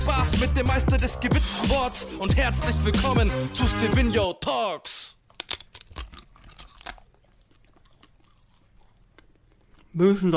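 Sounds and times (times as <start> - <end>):
speech: 0.4 - 5.2, 10.0 - 10.3
chewing edible paper: 5.3 - 10.0.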